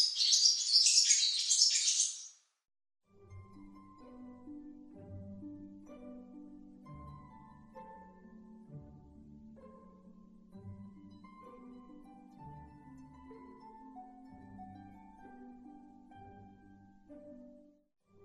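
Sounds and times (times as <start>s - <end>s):
small bird chirping: 0.0s - 2.4s
soft low-pitched music: 3.1s - 18.2s.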